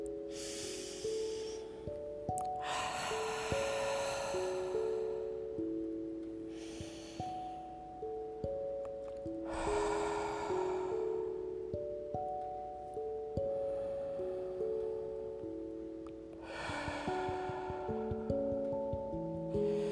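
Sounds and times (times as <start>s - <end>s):
soft sustained musical tones: 0.0s - 19.8s
slow deep breaths during a guided breathing exercise: 0.3s - 5.7s, 6.4s - 7.8s, 9.4s - 12.2s, 16.4s - 19.8s.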